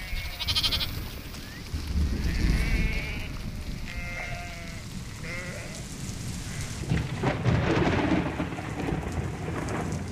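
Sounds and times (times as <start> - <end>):
sheep bleating: 0.0 - 1.0, 2.2 - 5.8
rain pouring through a thunderstorm: 1.0 - 10.0
low rumbling thunder: 1.7 - 10.0.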